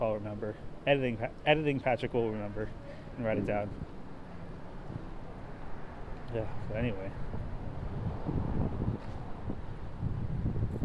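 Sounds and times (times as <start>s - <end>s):
speech: 0.0s - 3.9s, 6.3s - 7.4s
wind gusting outdoors and buffeting the microphone: 3.2s - 4.1s, 6.4s - 10.8s.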